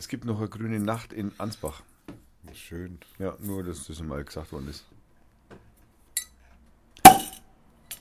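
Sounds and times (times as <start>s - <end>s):
speech: 0.0s - 4.9s
beer bottle opening pop: 7.0s - 7.4s.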